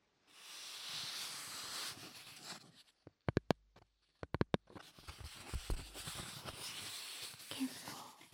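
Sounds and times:
stiff autograph board rubbing and sliding: 0:00.3 - 0:03.2, 0:04.6 - 0:08.3
sharp taps and flicks on a stiff autograph board: 0:03.0 - 0:06.1.

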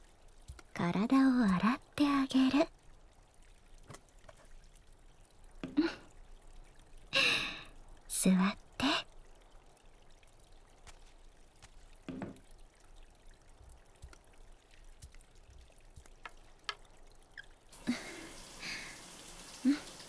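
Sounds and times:
hot water running during a bath: 0:00.0 - 0:20.0
speech: 0:00.8 - 0:02.8.

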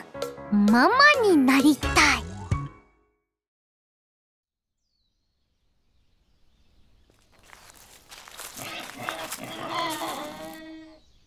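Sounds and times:
speech: 0:00.7 - 0:02.0
micro pigs squealing: 0:07.5 - 0:11.0
micro pigs grunting at a petting corner: 0:08.1 - 0:11.0.

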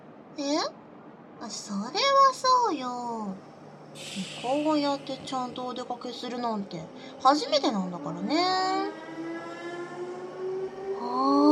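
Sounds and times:
speech: 0:00.4 - 0:00.8, 0:01.4 - 0:09.0
train electric motor whining: 0:04.0 - 0:11.2.

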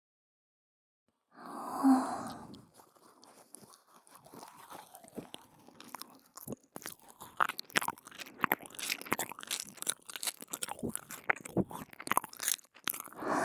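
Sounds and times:
breathy sigh: 0:01.4 - 0:02.6, 0:13.2 - 0:13.4
wet mouth nibbling and chewing on a nipple: 0:02.3 - 0:13.3.

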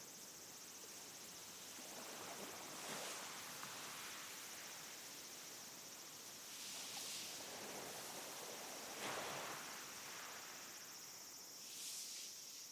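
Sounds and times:
high insect drone: 0:00.0 - 0:12.7
soft ocean waves washing ashore: 0:00.7 - 0:11.1.

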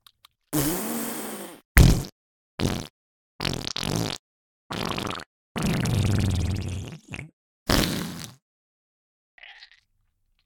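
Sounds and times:
loud farts: 0:00.6 - 0:08.4.

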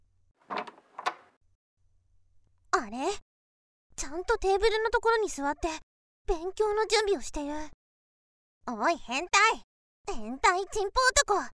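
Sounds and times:
door being opened with faint clunks: 0:00.5 - 0:01.3
speech: 0:04.1 - 0:07.8, 0:08.7 - 0:11.5.

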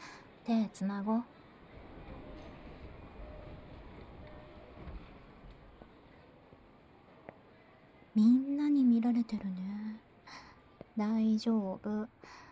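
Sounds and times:
train rolling into a station rumbling: 0:00.0 - 0:06.8
speech: 0:00.5 - 0:01.4, 0:09.1 - 0:09.6, 0:11.0 - 0:12.4.

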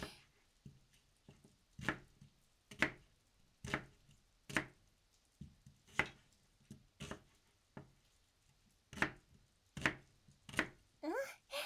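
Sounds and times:
kitchen knife chopping an onion into wedges on a cutting board: 0:01.8 - 0:03.0, 0:03.6 - 0:04.7, 0:05.9 - 0:06.2, 0:07.0 - 0:07.3, 0:08.9 - 0:09.2, 0:09.8 - 0:10.8.

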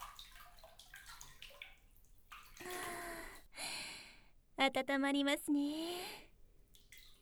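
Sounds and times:
water sloshing and dripping as a person lowers into a hot spring bath: 0:00.0 - 0:03.6, 0:06.3 - 0:07.1
speech: 0:04.6 - 0:06.2.

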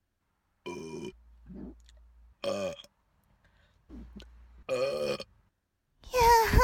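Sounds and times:
person burping: 0:00.6 - 0:02.9, 0:03.9 - 0:05.3
softer throaty sounds and breaths: 0:03.4 - 0:04.2.

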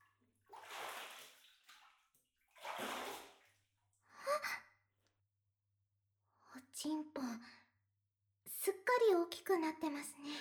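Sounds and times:
water poured while washing someone's back in a bath: 0:00.5 - 0:02.0, 0:02.6 - 0:03.4
speech: 0:06.8 - 0:07.6, 0:09.0 - 0:10.3.

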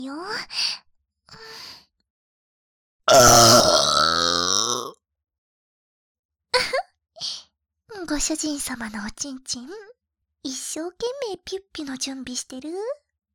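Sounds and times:
speech: 0:00.0 - 0:01.4, 0:08.1 - 0:13.0
very loud deliberate drawn-out burp: 0:03.1 - 0:05.0.

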